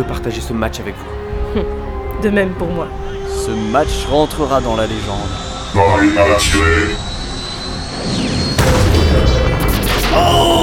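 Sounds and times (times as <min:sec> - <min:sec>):
speech: 0:00.0 - 0:07.1, 0:10.1 - 0:10.6
continuous loud noisy video game sound: 0:03.8 - 0:10.6
machine about to fire blown up in a video game: 0:07.9 - 0:10.6.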